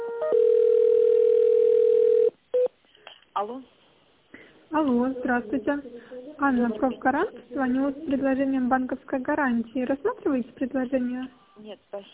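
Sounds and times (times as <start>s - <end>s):
telephone ringback tone while a call is transferred: 0.2s - 2.7s
speech: 5.3s - 12.1s.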